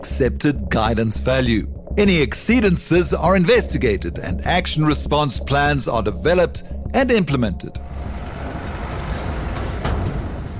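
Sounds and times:
speech: 0.0 - 8.1
heavy trucks hauling ore near port: 7.8 - 10.5.

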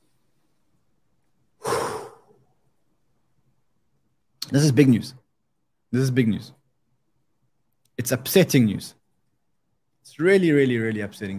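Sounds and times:
deep breath in and out: 1.6 - 2.6
speech: 4.5 - 5.2, 5.9 - 6.6, 8.0 - 9.0, 10.0 - 11.3.

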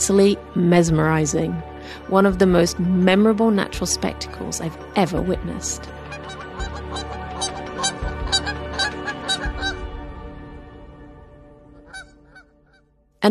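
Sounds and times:
speech: 0.0 - 6.4
flock of geese honking in flight: 6.0 - 9.9, 11.8 - 12.5.

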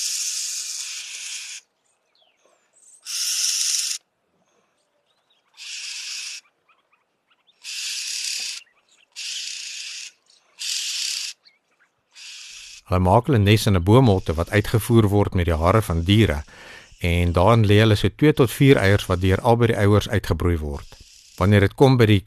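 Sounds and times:
small group of birds trading harsh hissing calls: 0.0 - 1.7, 3.0 - 4.0, 5.4 - 6.5, 7.5 - 11.5, 12.1 - 12.9, 15.8 - 17.6, 20.8 - 21.5
speech: 12.9 - 22.2.

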